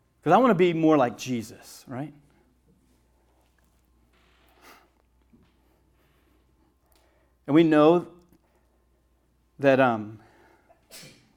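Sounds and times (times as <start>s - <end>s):
speech: 0.2s - 2.2s, 7.5s - 8.2s, 9.6s - 10.2s
sneeze: 10.8s - 11.3s.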